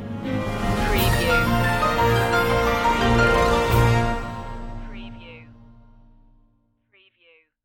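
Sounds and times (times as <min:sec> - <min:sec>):
news stinger: 0:00.4 - 0:06.0.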